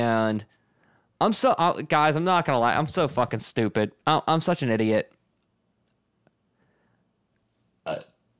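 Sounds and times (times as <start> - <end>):
speech: 0.0 - 0.6, 1.2 - 5.1, 7.9 - 8.1
loud burp: 7.8 - 8.2.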